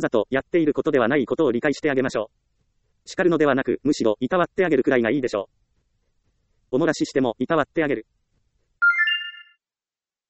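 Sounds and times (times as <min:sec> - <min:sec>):
speech: 0:00.0 - 0:05.6, 0:06.7 - 0:08.2
electronic telephone ring: 0:08.8 - 0:09.5.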